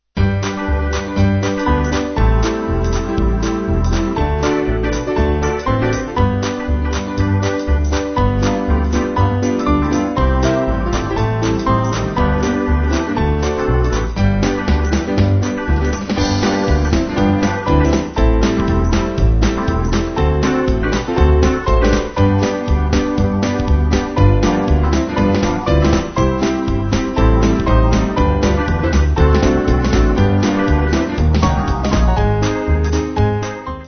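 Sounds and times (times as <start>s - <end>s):
jazzy band playing: 0.2s - 33.8s.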